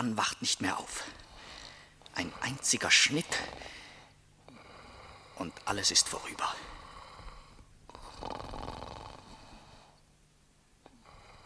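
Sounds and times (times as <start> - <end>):
speech: 0.1 - 1.2, 2.2 - 3.8, 5.4 - 6.8, 8.2 - 8.7
heavy snoring from a sleeping man with a thick neck: 3.2 - 5.7, 6.7 - 10.0, 10.9 - 11.4.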